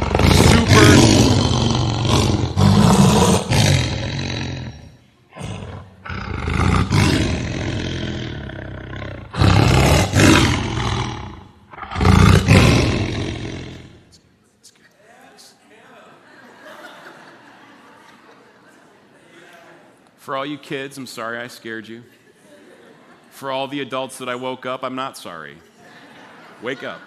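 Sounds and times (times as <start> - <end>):
lions roaring: 0.0 - 14.0
laughter: 15.9 - 20.0, 22.0 - 23.4, 25.6 - 27.0
speech: 20.3 - 22.2, 23.4 - 25.7, 26.6 - 27.0.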